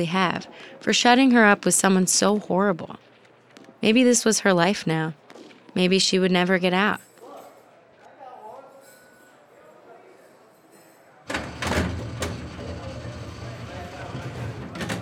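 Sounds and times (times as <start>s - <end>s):
speech: 0.0s - 3.1s, 3.8s - 5.2s, 5.8s - 7.1s
heavy metal cell door clanking and rattling open: 11.3s - 14.9s
sustained grinding scrape: 11.5s - 14.9s.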